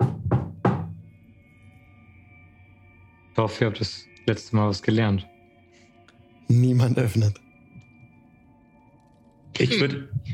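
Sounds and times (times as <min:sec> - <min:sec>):
knocking on a door: 0:00.0 - 0:01.0
speech: 0:03.4 - 0:05.3, 0:06.5 - 0:07.4, 0:09.6 - 0:10.3.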